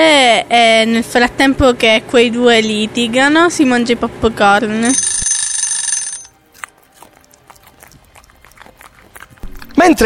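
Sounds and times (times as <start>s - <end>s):
speech: 0.4s - 5.2s, 9.8s - 10.0s
telephone ringing with a metallic bell-like jangle: 4.8s - 6.4s.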